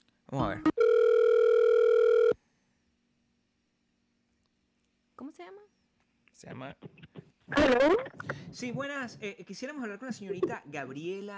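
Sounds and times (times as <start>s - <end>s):
speech: 0.3s - 0.8s, 5.2s - 11.3s
telephone dial tone while placing a call: 0.8s - 2.4s.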